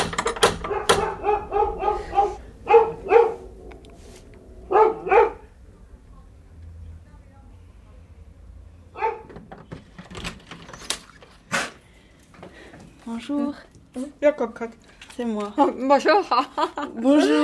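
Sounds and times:
female dog barking sharp loud yaps: 0.6s - 3.6s, 4.6s - 5.6s, 8.9s - 9.4s
speech: 13.2s - 17.4s.

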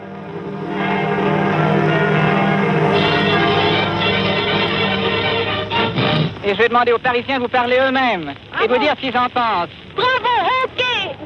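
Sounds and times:
church bells pealing: 0.0s - 6.3s
speech: 6.5s - 10.6s.

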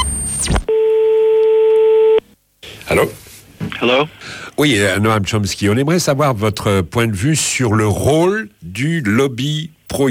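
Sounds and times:
telephone line tone while placing a call: 0.0s - 2.2s
speech: 2.9s - 10.0s.

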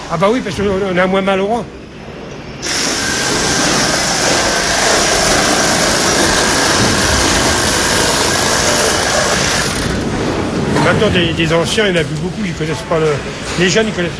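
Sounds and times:
speech: 0.1s - 1.8s, 10.9s - 14.1s
motorized saw running at high power: 2.6s - 10.1s.

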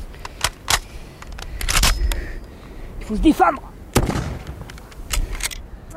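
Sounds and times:
muzzle-loading rifle being reloaded in a shell crater: 0.2s - 2.2s, 4.3s - 5.9s
speech: 3.1s - 3.7s.

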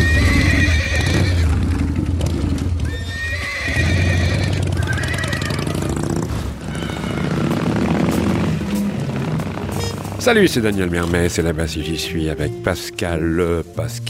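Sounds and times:
thoroughbred horses whinnying and neighing at a horse sale beside a racecourse: 0.0s - 12.4s
shuffling hooves of thoroughbred horses: 0.0s - 14.0s
speech: 10.3s - 14.0s.

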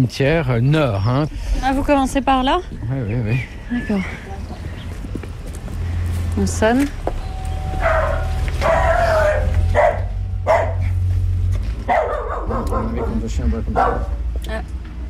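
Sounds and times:
speech: 0.0s - 4.3s, 6.4s - 7.0s, 13.2s - 14.8s
steady low hum: 0.0s - 14.9s
dog barking behind the door of a house: 7.7s - 11.1s, 11.8s - 14.3s.

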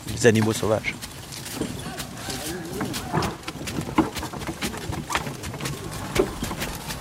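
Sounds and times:
horses carrying riders hooves clopping on ground while hunting: 0.0s - 7.0s
outdoor ambience: 0.0s - 7.0s
speech: 0.2s - 1.1s
soft voices: 1.6s - 3.5s.

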